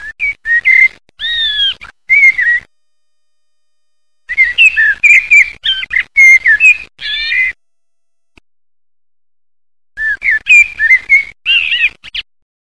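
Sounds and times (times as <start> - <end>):
common blackbird singing: 0.2 - 2.6, 4.3 - 7.6, 10.0 - 12.0.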